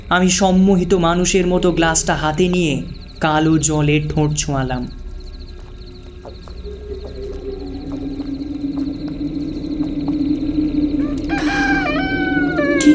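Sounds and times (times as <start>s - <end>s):
steady low drone: 0.0s - 12.9s
speech: 0.1s - 5.0s
mobile phone alarm set to a rooster crow: 10.9s - 12.9s.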